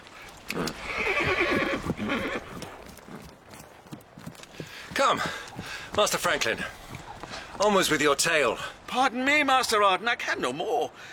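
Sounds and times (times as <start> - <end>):
faint horse hoof sounds: 0.2 - 8.7
horse whinnying after being pricked by its rider: 0.5 - 2.8
speech: 5.0 - 5.4, 6.0 - 6.8, 7.6 - 11.1.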